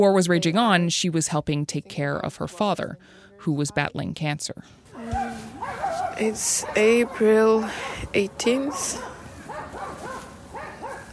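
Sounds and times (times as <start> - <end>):
speech: 0.0 - 5.2, 6.2 - 9.1
several dogs barking outdoors: 5.0 - 11.1.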